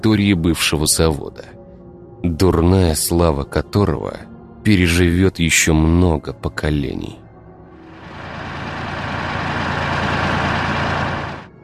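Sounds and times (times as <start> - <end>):
speech: 0.0 - 1.6, 2.2 - 7.2
heavy bulldozer engine roaring while clearing a path through thickets: 7.9 - 11.6.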